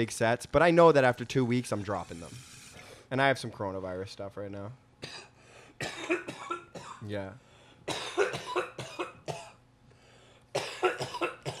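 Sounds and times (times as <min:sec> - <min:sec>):
speech: 0:00.0 - 0:02.5, 0:03.1 - 0:05.9, 0:07.0 - 0:08.0
harsh rapid coughing after a bong hit: 0:05.0 - 0:07.1, 0:07.9 - 0:09.6, 0:10.5 - 0:11.5.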